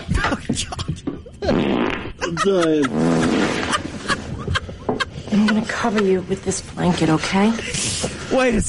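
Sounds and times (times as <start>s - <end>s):
people laughing in a radio clip: 0.1s - 6.6s
fart sounds from a radio station clip: 1.4s - 2.2s, 2.8s - 4.0s
speech: 2.4s - 3.3s, 5.4s - 8.6s.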